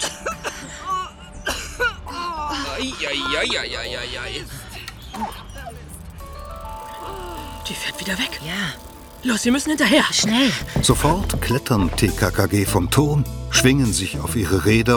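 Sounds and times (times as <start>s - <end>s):
laughter: 0.0s - 5.9s
woman coughing in harsh barking bursts: 1.4s - 2.0s
speech: 2.8s - 4.6s, 7.7s - 14.9s.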